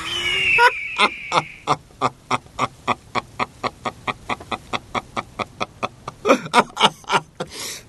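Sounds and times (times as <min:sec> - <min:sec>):
eagle screaming with cackling calls: 0:00.0 - 0:01.8
laughter: 0:00.0 - 0:07.5.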